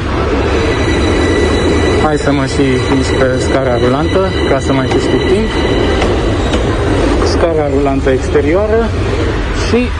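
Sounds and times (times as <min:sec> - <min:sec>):
faint high whine of a metro train: 0:00.0 - 0:09.0
metro train rumbling alongside a platform: 0:00.0 - 0:09.9
speech: 0:02.1 - 0:06.2, 0:07.4 - 0:09.9.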